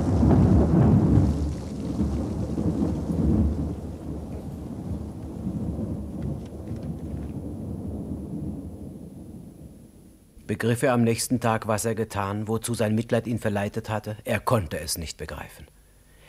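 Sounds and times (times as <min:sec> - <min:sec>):
rolling thunder on a stormy night: 0:00.0 - 0:10.3
rain hissing: 0:00.0 - 0:10.5
speech: 0:10.6 - 0:15.7.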